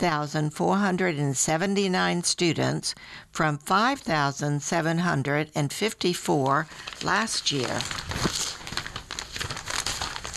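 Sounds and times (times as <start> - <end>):
speech: 0.0 - 8.4
paper page being turned: 6.8 - 10.3.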